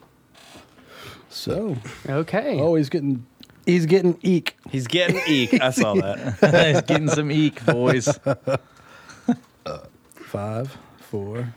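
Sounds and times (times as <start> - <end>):
speech: 1.4 - 11.5
laughter: 4.8 - 9.5
person burping: 9.6 - 10.0.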